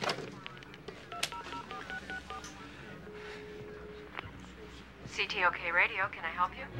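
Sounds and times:
faint voices: 0.0s - 5.6s
telephone redialing dial tones: 0.4s - 2.7s
long steady telephone tone: 1.1s - 5.1s
speech: 5.2s - 6.7s.

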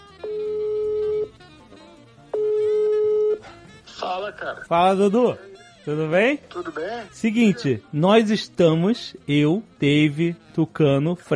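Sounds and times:
telephone ringback tone while calling a friend: 0.0s - 1.4s, 2.3s - 3.4s
speech: 4.1s - 11.3s.

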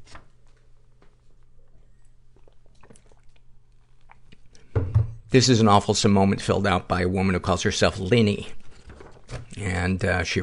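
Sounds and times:
low hum: 0.0s - 10.4s
person sipping coffee: 1.7s - 4.6s
speech: 5.3s - 8.6s, 9.6s - 10.4s.

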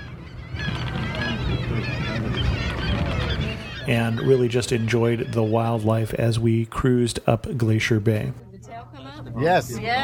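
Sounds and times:
sea lions calling on an island in Glacier Bay National Park: 0.0s - 6.5s
speech: 3.9s - 8.5s, 9.2s - 10.0s.

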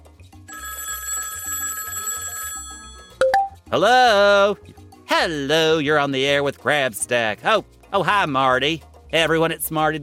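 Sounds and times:
telephone bell ringing with a metallic trill: 0.4s - 3.6s
low rhythmic musical bed: 0.6s - 10.0s
speech: 3.7s - 10.0s.

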